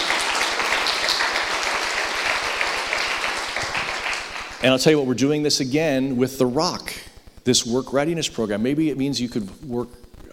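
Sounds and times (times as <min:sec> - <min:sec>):
audience applause: 0:00.0 - 0:04.6
speech: 0:04.6 - 0:10.3.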